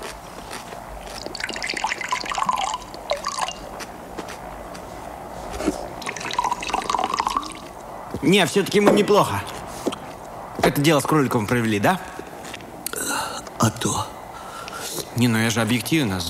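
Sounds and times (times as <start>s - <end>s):
drink being poured into a glass: 1.2s - 3.7s, 6.0s - 7.8s
speech: 8.2s - 9.6s, 10.7s - 12.1s, 15.2s - 16.2s.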